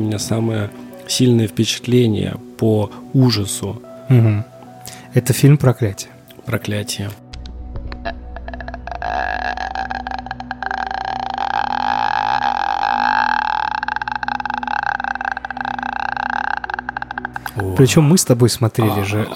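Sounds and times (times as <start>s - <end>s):
speech: 0.0s - 4.5s, 5.2s - 7.2s, 17.8s - 19.3s
eerie croaking rattle made with a comb: 7.9s - 18.4s.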